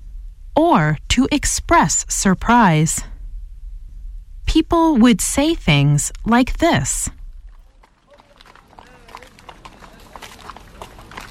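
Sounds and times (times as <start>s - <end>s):
outdoor noise: 0.0s - 11.2s
speech: 0.6s - 3.1s, 4.5s - 7.2s
horse hooves clip-clopping: 7.3s - 11.2s.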